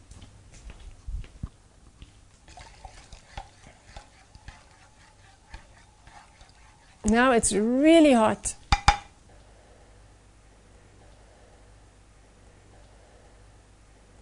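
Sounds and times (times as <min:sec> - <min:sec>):
stirring a hot fuming lye solution: 0:02.3 - 0:09.1
speech: 0:07.1 - 0:08.6.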